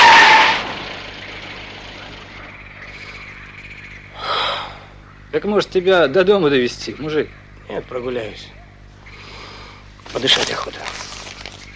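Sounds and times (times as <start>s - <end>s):
car engine starting and idling: 0.0s - 4.1s
speech: 5.3s - 8.6s, 10.1s - 11.1s.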